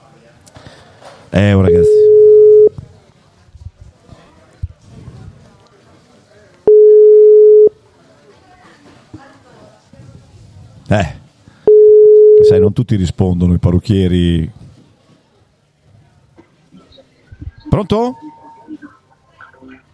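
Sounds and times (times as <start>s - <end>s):
people talking quietly: 0.0s - 19.9s
speech: 1.3s - 2.1s, 10.9s - 11.2s, 12.8s - 14.6s, 17.8s - 18.3s
telephone ringing tone on an outgoing call to a hairdresser: 1.7s - 2.7s, 6.7s - 7.7s, 11.7s - 12.6s.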